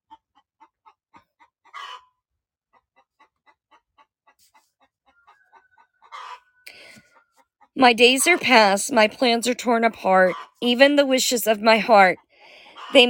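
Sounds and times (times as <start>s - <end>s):
hen cackling while laying an egg: 1.7s - 2.1s, 5.1s - 6.9s, 11.7s - 13.0s
speech: 7.8s - 12.2s.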